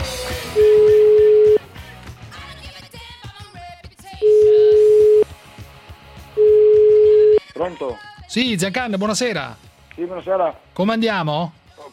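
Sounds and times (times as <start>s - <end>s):
telephone dial tone: 0.6s - 1.6s, 4.2s - 5.2s, 6.4s - 7.4s
speech: 7.7s - 11.9s.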